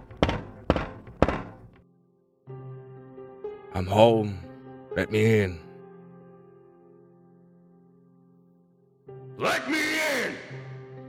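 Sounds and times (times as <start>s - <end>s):
heavy bangs on the front door of a house: 0.0s - 1.8s
speech: 3.8s - 4.4s, 5.0s - 5.6s.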